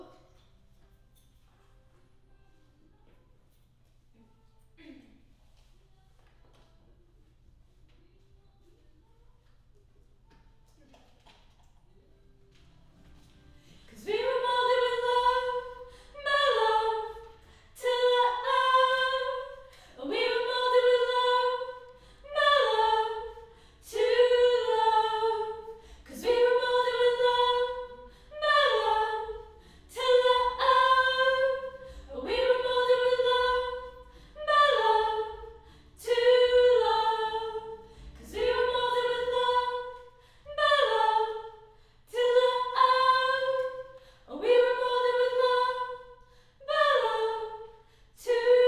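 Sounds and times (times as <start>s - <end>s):
choir singing high harmony: 13.7s - 48.6s.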